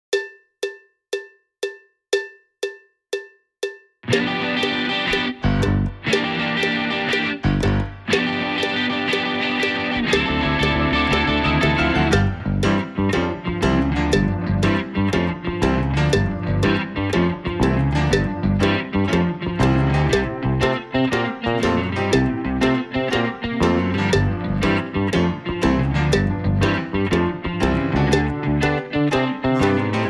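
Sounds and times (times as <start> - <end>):
shuffle rhythm music without drums: 0.1 - 30.0.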